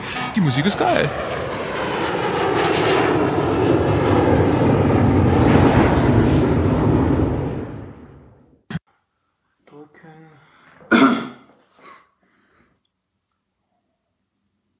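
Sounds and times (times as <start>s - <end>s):
airplane engine roaring in flight: 0.0s - 8.6s
speech: 0.4s - 1.5s.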